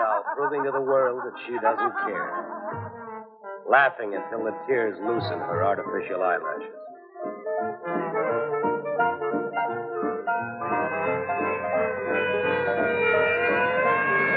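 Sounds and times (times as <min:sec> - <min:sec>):
laughter: 0:00.0 - 0:02.9, 0:04.8 - 0:06.4
speech: 0:00.4 - 0:03.1, 0:03.7 - 0:06.8
ambulance siren wailing: 0:08.3 - 0:14.3.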